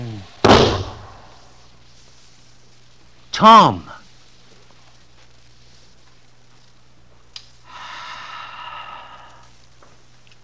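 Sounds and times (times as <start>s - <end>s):
gunshot muffled by a blanket wrapped around the gun: 0.4s - 1.4s
speech: 3.4s - 3.9s.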